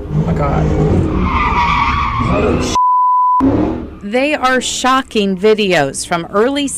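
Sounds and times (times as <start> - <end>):
engine roaring: 0.0 - 2.8, 3.4 - 6.5
tires skidding as cars do donuts: 0.0 - 2.8, 3.4 - 5.8
speech: 0.4 - 1.4, 2.2 - 2.8, 4.1 - 6.7
steady high electronic bleep tone: 2.8 - 3.5.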